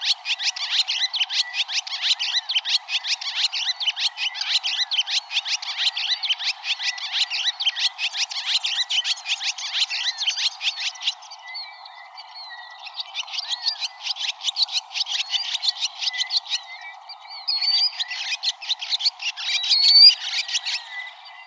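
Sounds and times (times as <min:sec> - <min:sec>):
Barn swallow twittering song in Arizona: 0:00.0 - 0:21.4.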